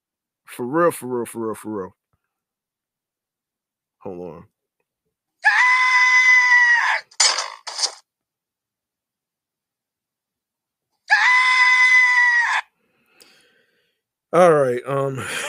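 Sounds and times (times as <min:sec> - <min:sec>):
speech: 0:00.5 - 0:02.0, 0:04.0 - 0:04.5, 0:14.3 - 0:15.4
loud screams: 0:05.4 - 0:08.0, 0:11.1 - 0:12.7.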